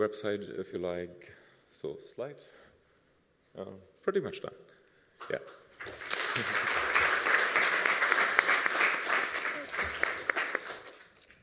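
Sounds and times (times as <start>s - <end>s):
speech: 0.0s - 2.6s, 3.6s - 6.7s
audience applause: 5.8s - 11.1s.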